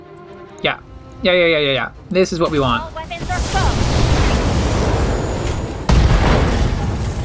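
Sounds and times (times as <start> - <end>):
speech: 0.6 - 3.6
sharp blast: 3.0 - 7.2
heavy rumbling ammunition explosion: 3.2 - 7.2.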